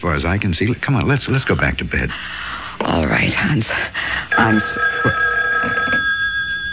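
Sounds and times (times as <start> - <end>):
speech: 0.0 - 5.8
telephone bell ringing in a house: 4.3 - 6.7.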